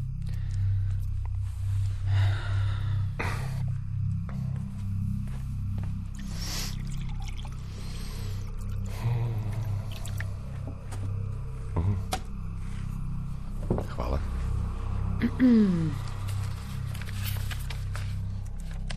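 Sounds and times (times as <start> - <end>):
steady low room hum: 0.0 - 18.9
water pouring into a glass: 6.7 - 7.7
speech: 15.4 - 16.0.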